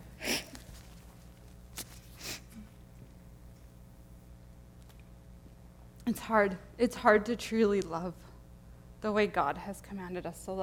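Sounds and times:
person sniffling: 0.2s - 0.8s, 2.1s - 2.7s
speech: 6.1s - 8.3s, 9.0s - 10.6s.

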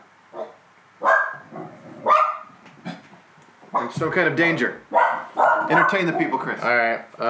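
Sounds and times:
dog barking sharply: 0.3s - 2.5s, 3.7s - 4.0s, 4.9s - 6.5s
speech: 3.9s - 7.2s.

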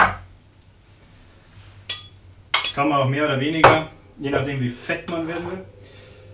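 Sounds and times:
spoon clinking against a glass while spooning Greek yogurt: 1.9s - 2.8s
speech: 2.8s - 6.0s.

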